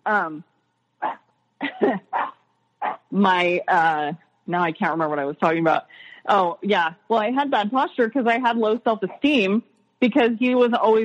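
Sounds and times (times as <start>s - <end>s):
speech: 0.0s - 0.5s, 1.8s - 2.2s, 3.1s - 11.0s
dog barking: 2.1s - 3.1s.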